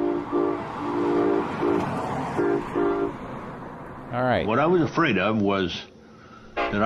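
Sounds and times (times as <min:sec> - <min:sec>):
train horn blasts at a rail location: 0:00.0 - 0:03.2, 0:06.6 - 0:06.8
speech: 0:04.2 - 0:05.9.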